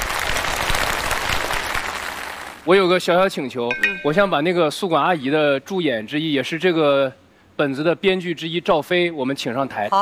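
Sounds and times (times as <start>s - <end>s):
theatre audience applauding a stage play cast: 0.0s - 2.6s
speech: 2.6s - 10.0s.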